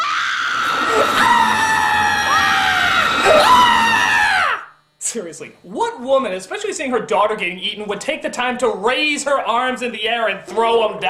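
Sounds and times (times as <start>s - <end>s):
high-pitched theatrical scream: 0.0s - 4.8s
speech: 5.2s - 11.0s.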